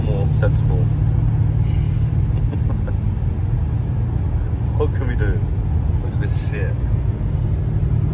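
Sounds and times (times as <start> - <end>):
car driving on a snowy road heard from inside: 0.0 - 8.1
speech: 0.4 - 1.0, 4.8 - 5.6, 6.2 - 6.9.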